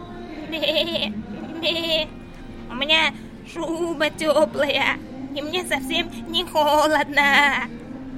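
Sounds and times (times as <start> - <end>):
ram bleating: 0.5 - 2.1
speech: 0.5 - 7.8.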